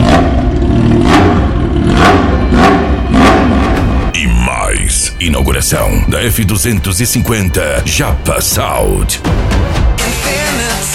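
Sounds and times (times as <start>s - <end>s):
motorcycle engine revving: 0.0s - 4.1s
speech: 5.2s - 10.9s.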